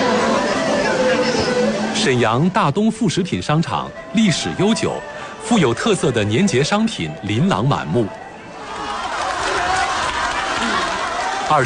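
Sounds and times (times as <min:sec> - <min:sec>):
packed crowd of shoppers cheering and calling out in a busy market: 0:00.0 - 0:02.2, 0:08.0 - 0:11.6
speech: 0:02.0 - 0:08.2, 0:11.5 - 0:11.6.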